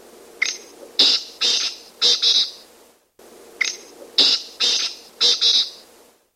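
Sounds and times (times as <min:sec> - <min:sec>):
Black Francolin: 0:00.4 - 0:02.6, 0:03.6 - 0:05.9.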